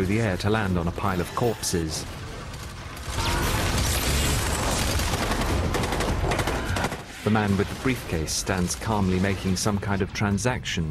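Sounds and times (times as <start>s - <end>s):
speech: 0.0s - 2.2s, 7.2s - 10.9s
gunfire in battle: 2.4s - 9.5s.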